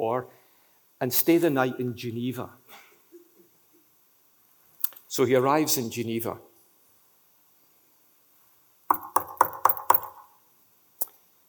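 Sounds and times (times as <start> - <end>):
speech: 0.0 - 0.4, 1.0 - 2.8, 5.1 - 6.5
quick sharp knocks on a wooden door: 8.9 - 10.2.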